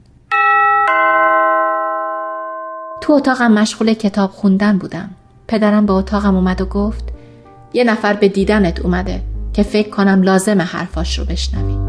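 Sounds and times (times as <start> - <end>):
two-tone ding-dong doorbell chime of a home: 0.3 - 3.3
speech: 3.1 - 11.8.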